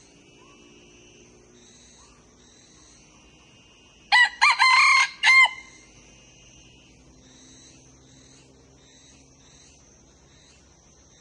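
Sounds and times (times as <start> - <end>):
faint steady background tone: 0.0 - 11.1
young male red junglefowl crowing: 4.1 - 5.8.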